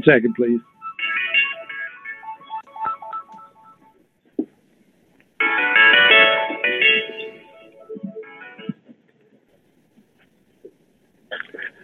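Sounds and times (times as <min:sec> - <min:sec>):
speech: 0:00.0 - 0:00.8
phone ringing with a melodic electronic ringtone: 0:00.6 - 0:04.0, 0:05.4 - 0:08.7.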